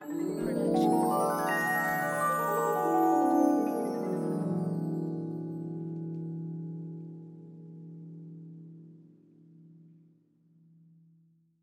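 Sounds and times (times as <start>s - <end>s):
fantasy glissando: 0.0s - 6.0s.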